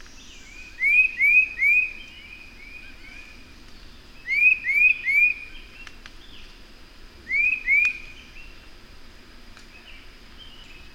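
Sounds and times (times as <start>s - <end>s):
bird whistling upslurred notes: 0.7s - 2.0s, 4.2s - 5.6s, 7.3s - 8.3s.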